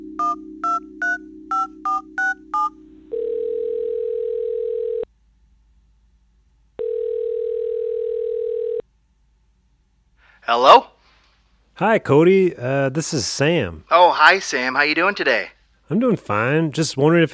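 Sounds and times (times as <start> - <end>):
steady phone dial tone: 0.1 - 5.1, 6.8 - 8.8
speech: 10.5 - 10.9, 11.8 - 17.3.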